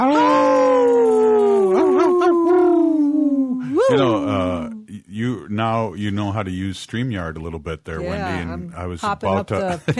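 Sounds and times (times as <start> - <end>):
wolf howling: 0.0 - 4.8
laughter: 1.4 - 3.0, 3.8 - 4.6, 8.0 - 9.9
speech: 5.0 - 9.9.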